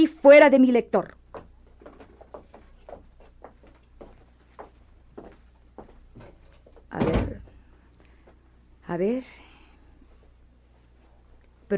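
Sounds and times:
speech: 0.0 - 1.2, 8.9 - 9.4
quiet knocks and shuffles: 1.2 - 8.5, 9.9 - 11.7.

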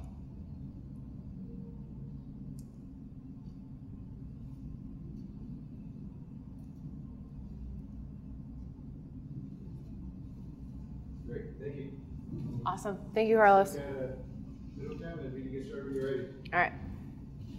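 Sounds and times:
constant broadband hum and rumble of indoor room tone: 0.0 - 17.5
speech: 11.4 - 14.3, 15.6 - 16.8.

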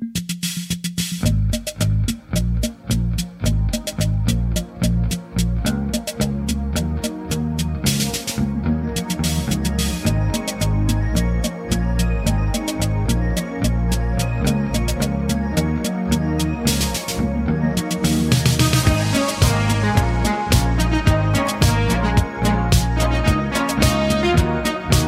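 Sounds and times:
loud full band with driving drums and heavy bass: 0.2 - 15.1, 16.4 - 25.0
short punchy notes: 18.2 - 25.0.

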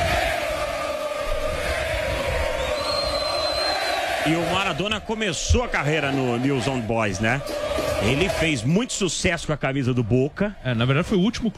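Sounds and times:
large crowd of football fans singing and chanting at a hotel door in Argentina: 0.0 - 9.1
speech: 4.2 - 11.5.

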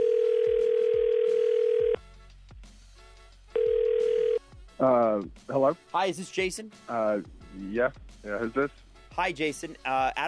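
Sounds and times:
outgoing phone ringback tone: 0.0 - 2.0, 3.6 - 4.4
speech: 4.8 - 10.2.

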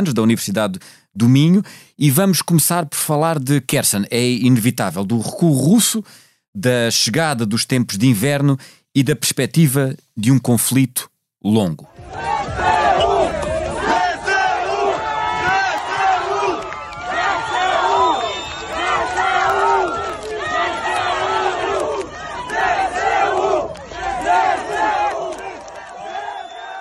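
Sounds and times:
speech: 0.0 - 12.8
large crowd cheering and shouting celebrating arrival of troops: 11.9 - 26.7.

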